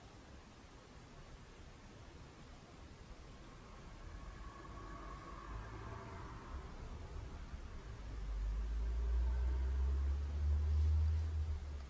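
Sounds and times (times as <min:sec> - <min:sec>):
road traffic hum: 0:02.7 - 0:11.8
vehicle passing: 0:03.3 - 0:11.8.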